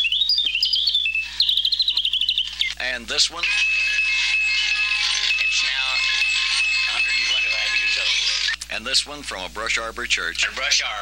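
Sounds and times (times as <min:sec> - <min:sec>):
tiny mechanical songbird warbling: 0:00.0 - 0:08.6
speech: 0:02.8 - 0:03.7, 0:07.8 - 0:11.0.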